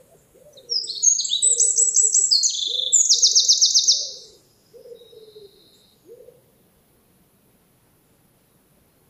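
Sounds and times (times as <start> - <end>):
Eurasian wren song with piercing high trills and buzzy rattles: 0.5 - 6.3.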